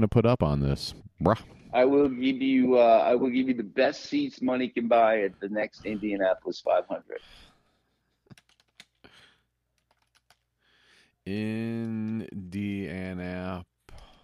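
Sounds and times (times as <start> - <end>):
speech: 0.0 - 7.4, 11.2 - 13.7
keyboard typing: 8.3 - 9.0, 9.7 - 10.5.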